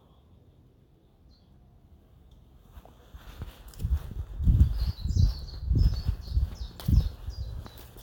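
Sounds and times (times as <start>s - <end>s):
faint bird song in woodland: 0.0s - 2.6s, 3.2s - 8.0s
heavy footsteps crunching along a woodland path: 2.6s - 8.0s.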